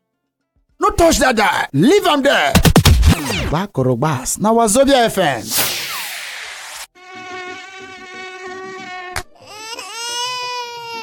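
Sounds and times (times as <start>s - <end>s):
speech: 1.0s - 5.7s
burst of hiss: 5.4s - 6.9s
mosquito whine: 5.6s - 9.9s.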